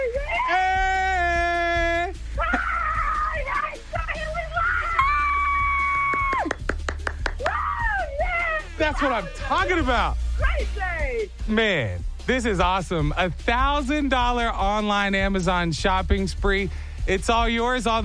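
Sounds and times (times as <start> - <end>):
person screaming excitedly: 0.2 - 6.5, 7.4 - 9.9
speech: 8.9 - 18.0.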